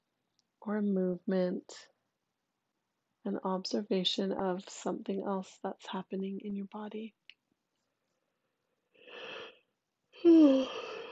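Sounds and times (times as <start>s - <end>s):
speech: 0.6s - 1.9s, 3.2s - 7.2s, 10.2s - 10.9s
breathy yawn: 10.2s - 11.1s.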